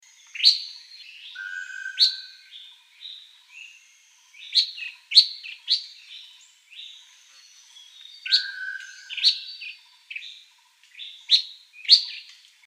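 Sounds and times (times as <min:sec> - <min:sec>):
Rufous-throated Fulvetta singing: 0:00.0 - 0:12.4.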